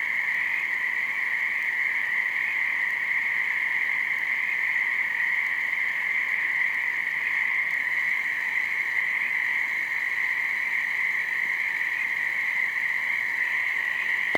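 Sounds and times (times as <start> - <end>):
frogs calling in a dense chorus: 0.0 - 14.3.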